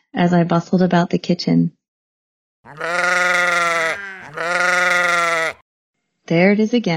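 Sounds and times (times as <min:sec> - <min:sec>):
speech: 0:00.1 - 0:01.8, 0:06.3 - 0:06.9
sheep bleating: 0:02.7 - 0:05.6.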